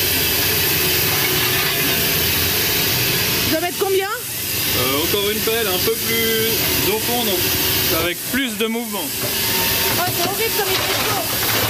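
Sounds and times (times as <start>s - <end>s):
fire roaring in the open firebox of a steam locomotive: 0.0s - 11.6s
speech: 5.1s - 11.6s.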